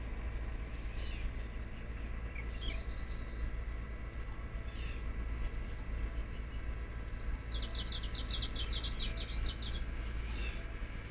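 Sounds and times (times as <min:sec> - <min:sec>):
Kamchatka leaf warbler song: 0:00.0 - 0:11.0
faint chirps from other birds: 0:00.2 - 0:03.5, 0:06.2 - 0:10.8.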